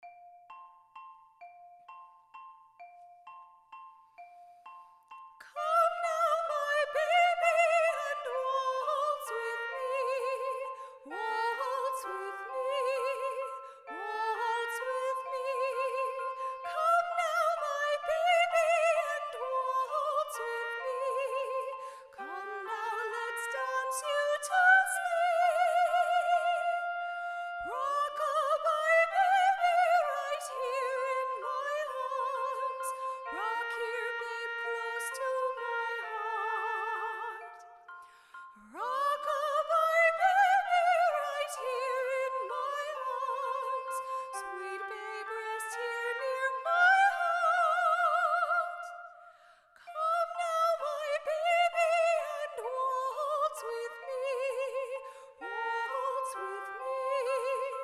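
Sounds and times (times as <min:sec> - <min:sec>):
lullaby waltz music: 0:00.0 - 0:57.8.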